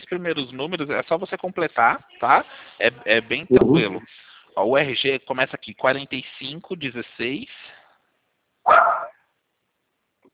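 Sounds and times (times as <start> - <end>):
speech: 0.1 - 7.8
dog barking during a phone call: 8.7 - 9.2.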